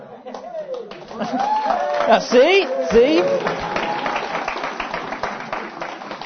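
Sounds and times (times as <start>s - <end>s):
large crowd applauding: 0.3s - 6.2s
whoops and cheers from a crowd: 1.1s - 4.5s
speech: 1.2s - 3.6s.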